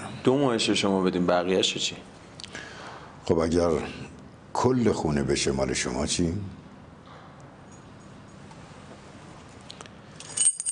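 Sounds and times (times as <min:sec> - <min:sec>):
speech: 0:00.2 - 0:02.2, 0:03.3 - 0:06.6
keys jangling as they are handed over: 0:10.1 - 0:10.6.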